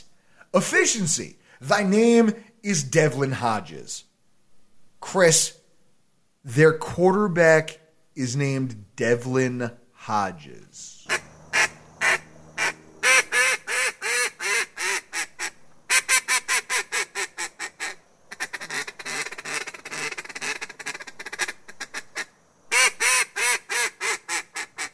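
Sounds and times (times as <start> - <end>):
speech: 0.5 - 4.1, 5.0 - 5.6, 6.4 - 11.0
duck call blown by a person: 11.1 - 24.9.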